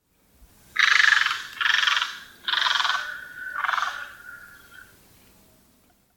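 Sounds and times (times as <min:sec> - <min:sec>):
great egret Casmerodius albus take-off calls: 0:00.8 - 0:04.9.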